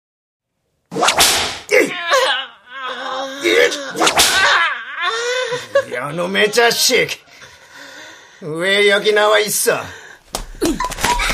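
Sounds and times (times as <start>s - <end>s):
whip lashes cracking inside a tent: 0.9s - 1.7s, 4.0s - 4.5s
boy wailing and moaning in pain: 1.7s - 6.0s
speech: 6.0s - 7.3s, 8.4s - 10.0s.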